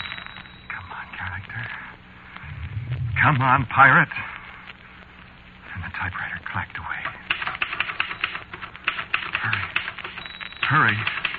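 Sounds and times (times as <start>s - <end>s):
tonal sweep: 2.4s - 3.5s
speech: 3.2s - 4.3s, 10.7s - 11.2s
typewriter keys clacking: 7.0s - 11.3s.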